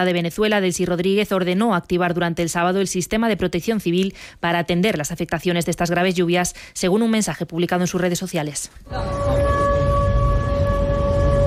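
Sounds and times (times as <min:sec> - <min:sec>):
speech: 0:00.0 - 0:09.6
air raid sirens wailing at night during a drone attack in Krasnodar: 0:08.9 - 0:11.4
dense rumbling low-frequency noise: 0:08.9 - 0:11.4.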